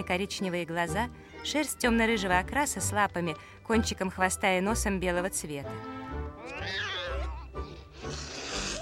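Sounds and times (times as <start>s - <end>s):
speech: 0.0s - 6.9s
white cat yowling: 6.5s - 7.4s.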